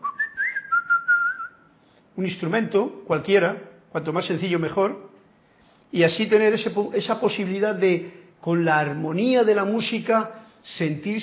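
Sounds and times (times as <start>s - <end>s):
person whistling a short melodic phrase: 0.0s - 1.7s
speech: 2.2s - 5.1s, 5.9s - 11.2s.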